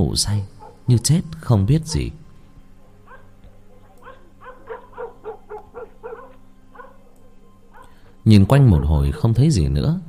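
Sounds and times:
speech: 0:00.0 - 0:02.2, 0:08.2 - 0:10.0
neighbour's dog barking in the distance: 0:00.6 - 0:00.9, 0:02.8 - 0:08.2
neighbour's dog whimpering yips: 0:04.0 - 0:07.0.

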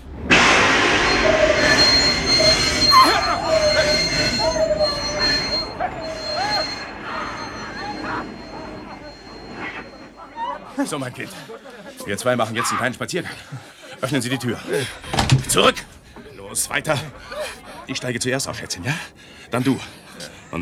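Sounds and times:
train wheels squealing as train brakes hard after emergency brake pulled: 0:00.0 - 0:11.7, 0:14.0 - 0:20.6
laughter: 0:00.0 - 0:20.6
rumbling rail noise: 0:00.0 - 0:20.6
speech: 0:10.9 - 0:20.6.

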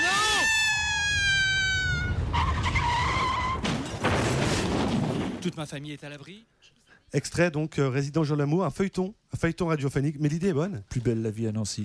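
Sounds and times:
car with failed brakes skidding, tyres screeching, radio drama effect: 0:00.0 - 0:03.9
abrupt noisy bursts: 0:00.0 - 0:05.0
speech: 0:05.4 - 0:11.8.

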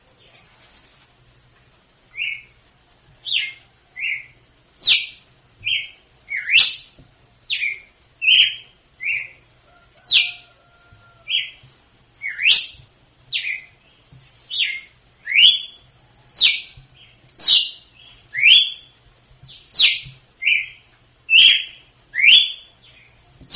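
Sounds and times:
female Red-cowled cardinal whistled açoite song, Northeast Brazil singing style: 0:02.1 - 0:02.6, 0:03.2 - 0:09.4, 0:10.0 - 0:10.6, 0:11.2 - 0:11.6, 0:12.2 - 0:13.9, 0:14.5 - 0:23.5.

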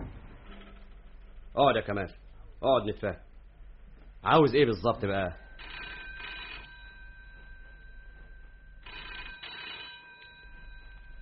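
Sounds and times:
speech: 0:01.6 - 0:03.3, 0:04.2 - 0:05.4
telephone bell ringing in a button factory: 0:05.4 - 0:11.2.

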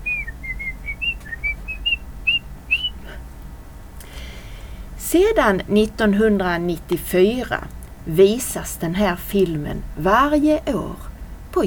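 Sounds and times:
person whistling a tune: 0:00.0 - 0:03.2
low steady hum: 0:00.0 - 0:11.6
speech: 0:05.1 - 0:11.6.

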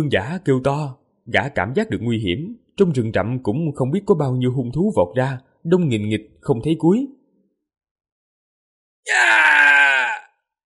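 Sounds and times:
speech: 0:00.0 - 0:07.2, 0:09.0 - 0:09.6
agonized human scream: 0:09.0 - 0:10.4.

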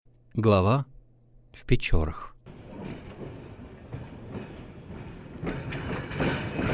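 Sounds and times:
speech: 0:00.4 - 0:00.9, 0:01.6 - 0:02.3
train arriving at the railway station in Pechory: 0:02.5 - 0:06.7.

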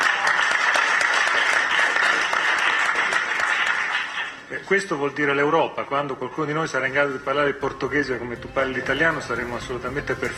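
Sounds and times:
applause at a public event honoring a speaker: 0:00.0 - 0:04.5
speech: 0:04.7 - 0:10.3.

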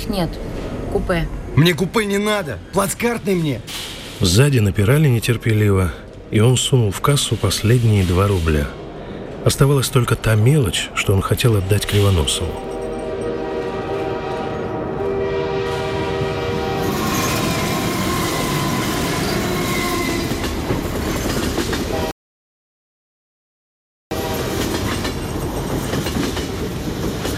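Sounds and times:
train wagons rolling into a station platform at night: 0:00.0 - 0:22.1, 0:24.2 - 0:27.3
speech: 0:00.1 - 0:08.8, 0:09.4 - 0:12.7
sustained horn-like tone of a train: 0:12.6 - 0:20.6, 0:21.9 - 0:22.1, 0:24.1 - 0:24.8.

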